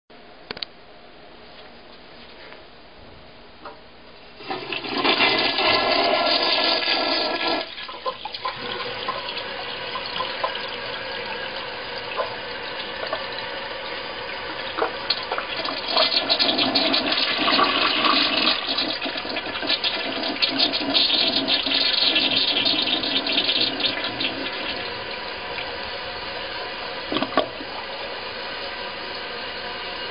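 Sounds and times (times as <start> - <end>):
toilet flushing: 4.3 - 30.0.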